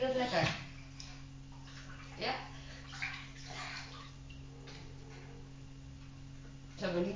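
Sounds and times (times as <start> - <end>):
speech: 0.0 - 0.6
warm water splashing in a bathtub as a young child bathes: 0.0 - 5.3
low steady hum: 0.0 - 7.1.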